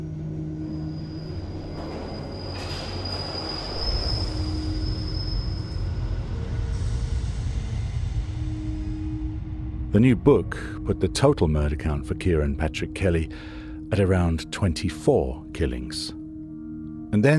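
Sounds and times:
thin steady metallic wheel squeal of a tube train: 0.0 - 7.1
London Underground tube train rumbling: 0.0 - 11.2
speech: 9.9 - 16.2, 17.1 - 17.3.

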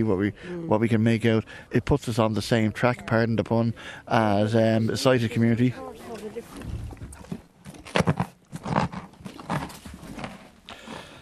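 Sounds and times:
speech: 0.0 - 6.7
horse crunching a carrot: 5.9 - 11.2.

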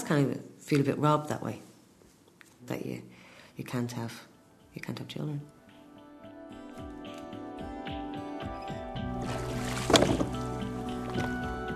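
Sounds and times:
speech: 0.1 - 1.7, 2.6 - 5.6
water dripping and sloshing at a canal dock basin: 9.2 - 11.6.

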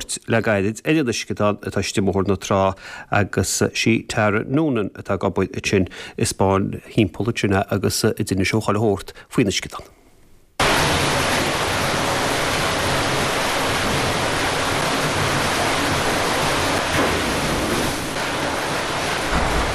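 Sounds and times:
speech: 0.3 - 10.0
water surging and churning in an aquarium splash tank: 10.6 - 19.7.

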